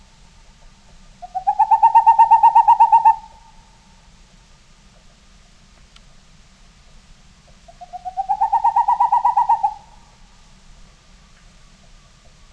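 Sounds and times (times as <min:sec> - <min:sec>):
boreal owl giving trills of soft hollow hoots: 0:01.2 - 0:03.9, 0:07.7 - 0:10.2.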